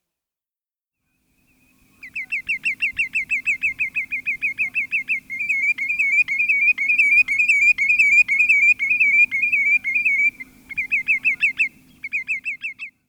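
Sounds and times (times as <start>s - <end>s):
Lesser Yellowlegs calling: 1.5s - 13.0s.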